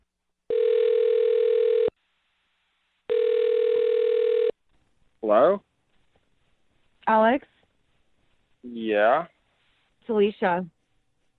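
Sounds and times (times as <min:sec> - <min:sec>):
telephone dial tone: 0:00.5 - 0:01.9, 0:03.1 - 0:04.5
speech: 0:05.3 - 0:05.7, 0:07.1 - 0:07.5, 0:08.7 - 0:09.3, 0:10.1 - 0:10.7.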